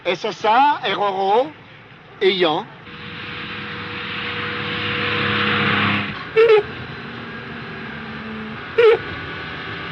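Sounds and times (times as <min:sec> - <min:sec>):
speech: 0:00.0 - 0:01.6, 0:02.2 - 0:02.8
car engine sputtering out of fuel: 0:02.9 - 0:09.8.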